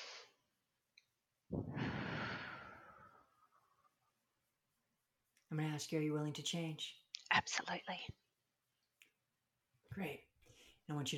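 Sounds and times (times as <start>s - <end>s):
person breathing deeply: 1.5s - 3.6s
speech: 5.5s - 8.2s, 9.9s - 10.3s, 10.9s - 11.1s.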